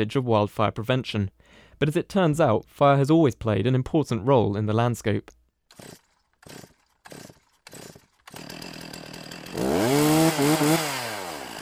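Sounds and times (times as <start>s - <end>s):
speech: 0.0s - 8.6s, 9.6s - 11.0s
chainsaw pull-started then idling and revving in a forest: 5.7s - 11.6s.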